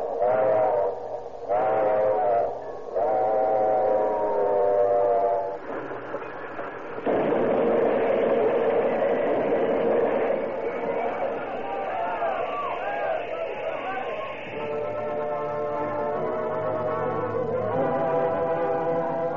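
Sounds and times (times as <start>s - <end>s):
train engine whistle shrieking: 0.0s - 5.6s, 10.6s - 19.3s
steady low rumble of the moving train: 0.0s - 19.3s.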